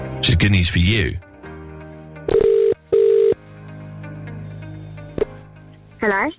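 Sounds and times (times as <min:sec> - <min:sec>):
speech: 0:00.2 - 0:01.2, 0:06.0 - 0:06.3
electronic ring tones of an outgoing phone call: 0:02.3 - 0:03.4.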